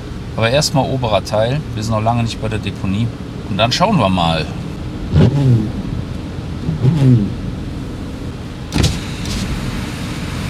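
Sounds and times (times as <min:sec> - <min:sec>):
car driving down a snowy county road with slush at around 50 km/h: 0:00.0 - 0:10.4
speech: 0:00.4 - 0:05.8, 0:06.7 - 0:07.4
passing vehicles or spray whooshing: 0:02.6 - 0:10.4.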